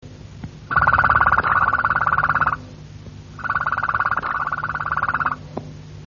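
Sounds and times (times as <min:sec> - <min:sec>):
low steady hum: 0:00.0 - 0:06.0
Harz Roller canary trilling: 0:00.7 - 0:02.6, 0:03.4 - 0:05.4.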